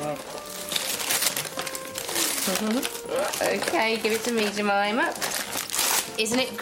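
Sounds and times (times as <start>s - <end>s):
wrapping paper of Christmas present being torn open: 0.0s - 6.6s
person murmuring: 2.3s - 2.9s
speech: 2.4s - 5.4s, 6.2s - 6.6s.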